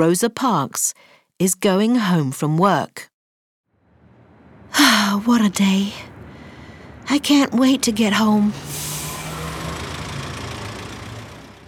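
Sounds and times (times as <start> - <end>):
speech: 0.0 - 3.1, 4.7 - 6.1, 7.1 - 8.9
bus engine idling: 3.8 - 11.6.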